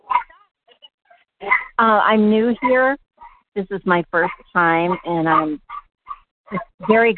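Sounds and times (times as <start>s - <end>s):
caller's dogs barking during a phone call: 0.0s - 0.3s, 4.2s - 7.1s
speech: 1.4s - 3.0s, 3.6s - 5.6s, 6.5s - 7.1s.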